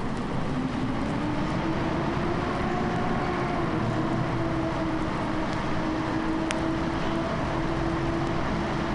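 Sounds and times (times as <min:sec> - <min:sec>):
train motors starting up and rumbling: 0:00.0 - 0:08.9.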